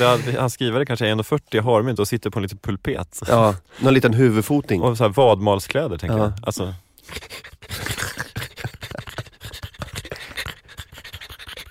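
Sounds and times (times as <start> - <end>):
speech: 0.0 - 7.4
voice imitating heavy rapid panting: 7.0 - 11.6.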